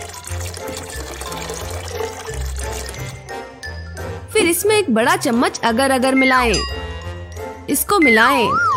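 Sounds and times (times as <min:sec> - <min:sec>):
hot water poured into a cup with a herbal tea bag: 0:00.0 - 0:03.4
speech: 0:04.5 - 0:06.8, 0:07.7 - 0:08.6.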